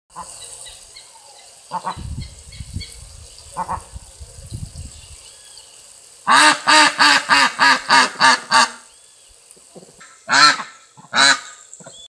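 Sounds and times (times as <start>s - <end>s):
marreco duck calling: 1.7s - 2.0s, 6.3s - 8.8s, 10.3s - 11.6s.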